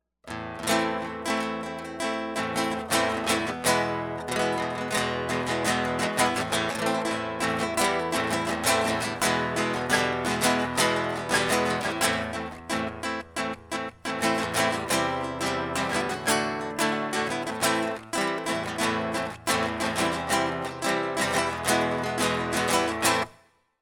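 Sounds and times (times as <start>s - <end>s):
classical guitar: 0.2s - 23.4s.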